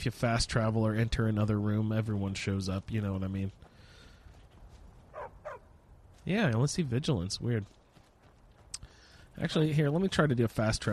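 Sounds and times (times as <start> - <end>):
speech: 0.0 - 3.6, 6.2 - 7.8, 9.4 - 10.9
dog barking in a video game: 5.1 - 5.6.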